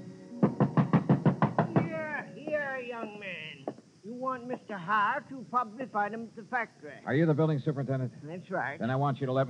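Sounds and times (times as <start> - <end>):
heavy fists pounding on a wooden door: 0.5 - 1.9
speech: 4.5 - 9.4.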